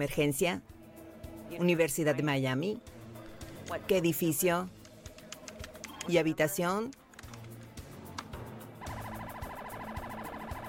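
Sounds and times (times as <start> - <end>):
speech: 0.0 - 0.7, 1.5 - 3.0, 3.7 - 4.8, 6.1 - 7.0
police patrol car siren wailing at a university dormitory: 8.8 - 10.6.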